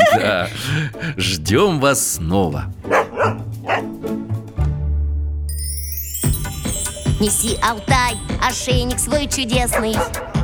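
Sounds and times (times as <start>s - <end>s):
laughter: 0.0s - 1.2s
speech: 0.2s - 3.9s, 7.2s - 10.4s
dog barking: 2.8s - 4.1s, 9.7s - 10.4s
sustained musical tone with high whistling layer: 5.5s - 9.5s.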